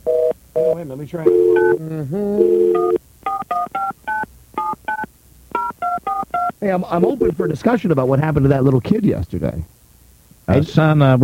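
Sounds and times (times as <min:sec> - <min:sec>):
speech: 0:00.6 - 0:03.0, 0:06.6 - 0:09.7, 0:10.5 - 0:11.2
telephone dialing tones: 0:01.3 - 0:01.8, 0:02.4 - 0:06.5.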